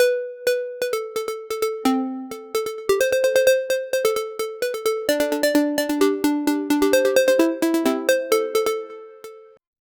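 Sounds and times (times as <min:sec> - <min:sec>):
little score sound effect: 0:00.0 - 0:09.6.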